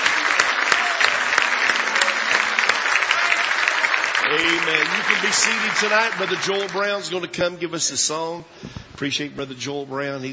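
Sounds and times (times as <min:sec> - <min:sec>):
crowd applauding at night: 0:00.0 - 0:07.5
speech: 0:04.3 - 0:10.3.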